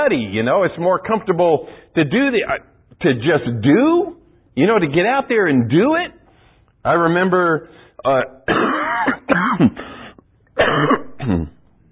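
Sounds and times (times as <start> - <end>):
speech: 0.0 - 6.2, 6.8 - 9.9, 10.6 - 11.6
person coughing: 8.5 - 11.7
throat clearing: 8.5 - 11.8.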